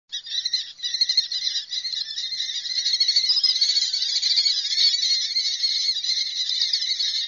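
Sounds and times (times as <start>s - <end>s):
Amur falcon Falco amurensis: 0.1s - 7.2s.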